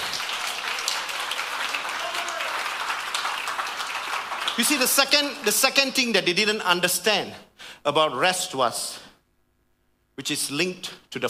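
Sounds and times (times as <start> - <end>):
large crowd applauding: 0.0 - 5.6
speech: 4.6 - 9.0, 10.2 - 11.2.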